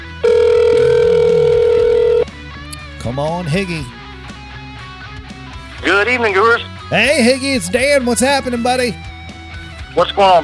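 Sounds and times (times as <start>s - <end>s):
electronic ringback tone of a phone call: 0.2s - 2.2s
speech: 3.0s - 4.0s, 5.8s - 9.1s, 10.0s - 10.4s.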